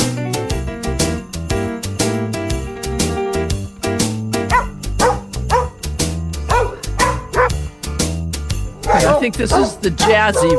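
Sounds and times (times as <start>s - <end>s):
steady beat and backing bass: 0.0s - 10.5s
pitched dog barks forming a holiday jingle melody: 4.5s - 5.8s, 6.5s - 7.6s, 8.8s - 10.5s
speech: 9.2s - 10.5s.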